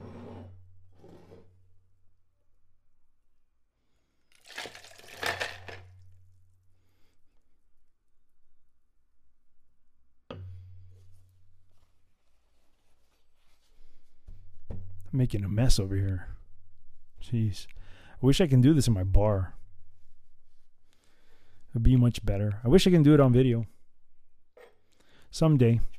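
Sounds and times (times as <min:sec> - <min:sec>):
ice and water dumped out of a martini glass: 0:04.3 - 0:05.9
speech: 0:15.2 - 0:16.3, 0:17.2 - 0:19.6, 0:21.8 - 0:23.7, 0:25.3 - 0:25.9.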